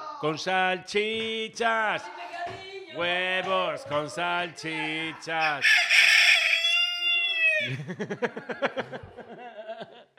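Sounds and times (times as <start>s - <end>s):
speech: 0.2s - 6.3s, 7.6s - 9.9s
laughter: 4.5s - 10.1s
rooster crowing: 5.4s - 7.8s.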